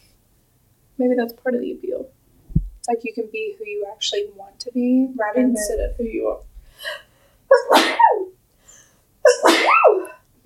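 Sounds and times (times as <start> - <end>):
speech: 1.0 - 2.2, 2.9 - 8.2
person sneezing: 7.5 - 8.3, 9.3 - 10.2.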